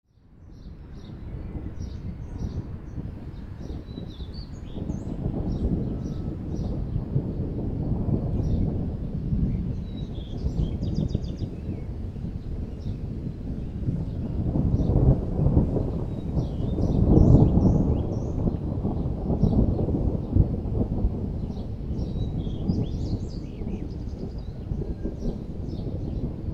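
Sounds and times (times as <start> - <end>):
thunderstorm: 0.2 - 26.5.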